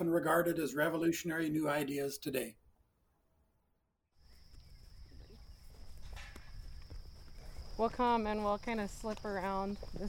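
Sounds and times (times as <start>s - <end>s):
speech: 0.0s - 2.6s, 7.8s - 10.0s
cows trampling and rustling through a pasture: 4.3s - 10.0s.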